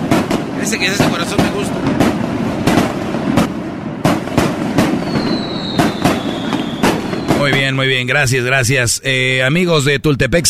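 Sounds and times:
firework rockets bursting in sharp bangs: 0:00.0 - 0:08.0
speech: 0:00.7 - 0:02.3, 0:07.4 - 0:10.4.

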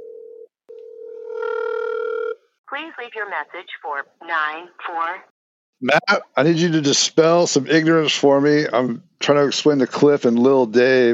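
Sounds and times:
electronic phone ringing tone: 0:00.0 - 0:02.4
speech: 0:02.7 - 0:11.1.

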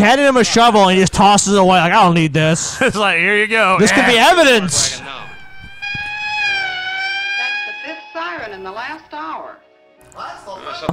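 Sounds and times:
speech: 0:00.0 - 0:05.2
siren wailing: 0:03.6 - 0:09.1.

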